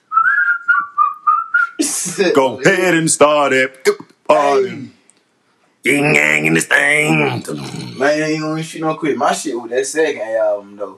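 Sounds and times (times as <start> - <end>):
person whistling a melodic phrase from a hip-hop song: 0.1 - 1.8
speech: 2.0 - 4.9, 5.8 - 10.9.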